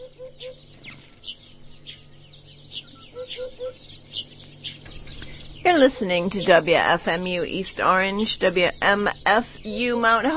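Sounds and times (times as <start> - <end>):
sparrows chirping in a farmyard: 0.0 - 10.3
hoopoe hooting from its nest hole in a wall: 2.8 - 3.9, 5.7 - 10.3
speech: 5.8 - 10.3.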